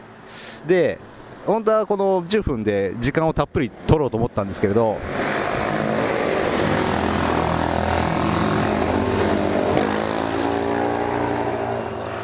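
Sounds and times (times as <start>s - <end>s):
speech: 0.6s - 5.2s
supermoto motorcycle engine passing by: 5.0s - 12.2s.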